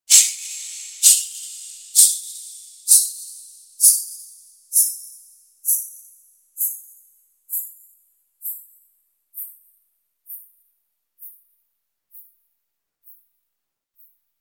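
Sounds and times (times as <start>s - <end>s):
caixa snare drum: 0.1s - 3.2s.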